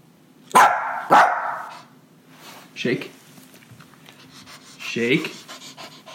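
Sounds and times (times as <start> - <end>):
dog barking on command: 0.5 - 1.9
speech: 2.8 - 3.2, 5.0 - 5.4.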